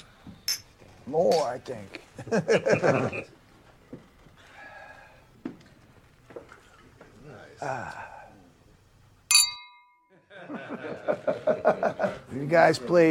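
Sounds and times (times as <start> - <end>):
speech: 1.1 - 3.4, 7.6 - 8.1, 10.8 - 13.0
small group laughing: 2.2 - 3.3, 10.2 - 12.9
small group gasping: 4.4 - 5.3, 7.5 - 8.5
murmured voices from a small group: 7.0 - 8.6
glasses clinking in a toast in a recording studio: 9.3 - 10.1.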